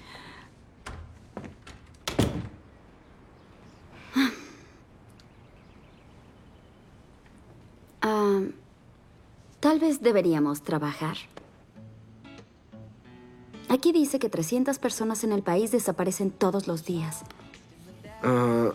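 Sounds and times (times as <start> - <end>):
door pushed shut with light clicks and dull thump: 0.8 - 2.7
speech: 9.8 - 11.4, 13.8 - 17.3, 18.2 - 18.7.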